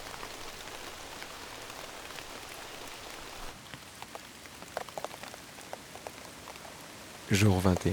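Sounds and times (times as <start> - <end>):
rain dripping on large succulent leaves in a forest: 0.0 - 7.9
speech: 7.3 - 7.9.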